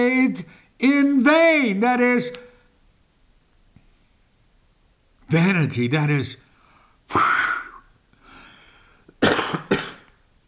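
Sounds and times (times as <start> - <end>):
speech: 0.0 - 2.5, 5.3 - 6.4
person coughing: 7.1 - 7.8, 9.2 - 10.2.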